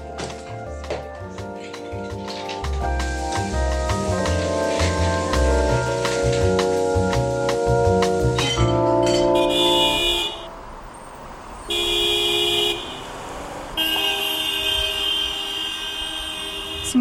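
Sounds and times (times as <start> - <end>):
idling traffic rumble: 0.0 - 16.9
car horns honking in a traffic jam: 8.4 - 10.7, 11.6 - 13.2, 13.8 - 16.9.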